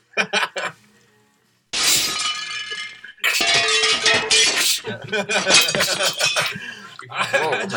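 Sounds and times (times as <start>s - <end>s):
bright tinkling glass shards scattering: 1.8s - 6.6s
loud glass shattering: 1.8s - 6.6s
laughter: 4.8s - 7.7s.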